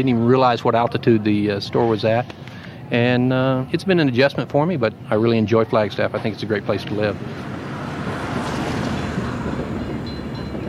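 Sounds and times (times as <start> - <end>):
speech: 0.0 - 7.6
freight train rolling through downtown Flagstaff: 6.2 - 10.6.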